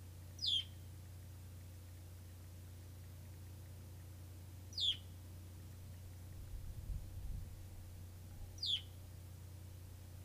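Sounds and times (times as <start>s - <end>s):
low hum: 0.0s - 10.2s
bird chirping: 0.4s - 0.8s, 4.7s - 5.1s, 8.6s - 9.0s.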